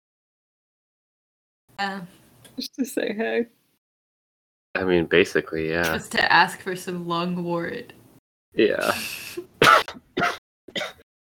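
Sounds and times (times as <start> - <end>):
speech: 1.8 - 3.6, 4.8 - 10.9
loud throaty coughing: 8.6 - 11.0
throat clearing: 9.6 - 11.0.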